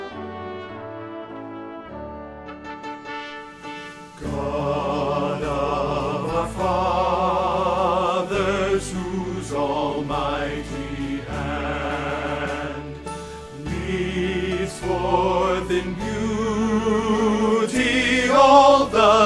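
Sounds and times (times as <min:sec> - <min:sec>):
tenor singing a hymn for choir rehearsal: 0:04.1 - 0:19.2.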